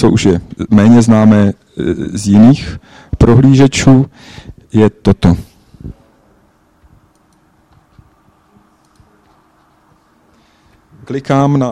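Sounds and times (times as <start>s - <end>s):
speech: 0.0s - 6.0s, 11.1s - 11.7s
soft computer mouse clicks on photos in a web browser: 7.1s - 8.1s, 8.8s - 9.8s.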